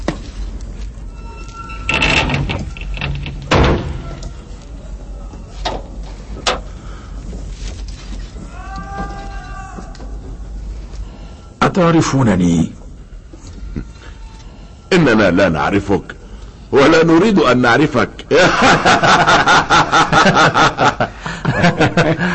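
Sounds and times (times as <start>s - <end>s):
door pushed shut with heavy thuds: 1.9s - 4.4s
speech: 11.7s - 12.8s, 14.9s - 21.0s
laughter: 18.3s - 22.3s.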